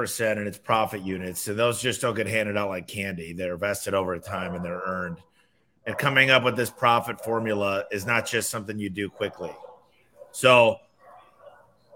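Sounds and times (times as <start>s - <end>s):
speech: 0.0s - 9.6s, 10.3s - 10.8s
dog barking: 4.3s - 4.8s, 5.9s - 11.9s.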